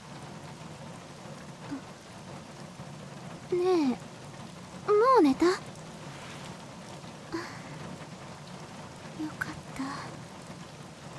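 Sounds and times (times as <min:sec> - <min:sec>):
rain beginning to fall: 0:00.0 - 0:11.1
speech: 0:03.5 - 0:04.1, 0:04.9 - 0:05.7.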